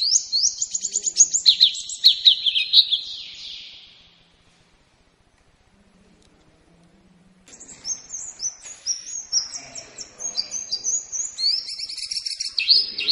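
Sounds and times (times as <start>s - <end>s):
Lombok white-eye twittering song with slurred whistles: 0.0s - 4.2s, 7.5s - 13.1s.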